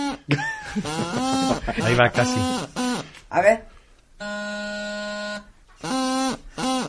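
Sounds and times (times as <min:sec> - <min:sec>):
laughter: 0:00.3 - 0:02.6
speech: 0:00.3 - 0:04.3
junior practice chanter buzzing notes: 0:00.8 - 0:03.1, 0:04.2 - 0:06.8.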